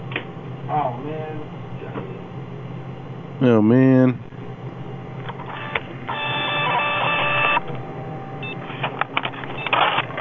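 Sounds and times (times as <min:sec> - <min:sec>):
speech: 0:03.4 - 0:04.4
fax machine whirring and clattering while receiving and printing a fax: 0:05.2 - 0:10.1.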